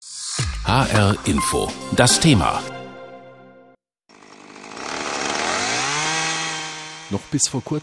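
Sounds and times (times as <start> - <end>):
speech: 0.6 - 2.7, 7.1 - 7.8
chainsaw cutting through the trunk of a giant Amazon rainforest tree: 4.1 - 7.5.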